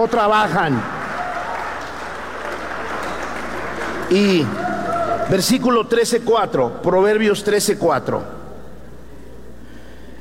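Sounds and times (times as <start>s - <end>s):
speech: 0.0s - 1.0s, 4.1s - 4.6s, 5.3s - 8.4s
church congregation applauding during a sermon: 0.0s - 6.0s.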